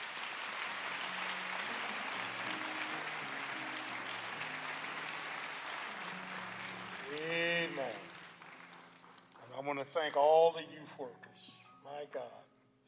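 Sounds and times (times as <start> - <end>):
applause from a large congregation: 0.0 - 9.5
speech: 9.7 - 12.5.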